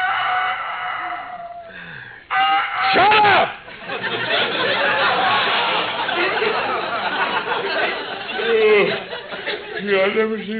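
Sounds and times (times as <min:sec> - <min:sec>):
rooster crowing: 0:00.0 - 0:03.0
laughter: 0:03.2 - 0:10.4
speech: 0:09.8 - 0:10.5.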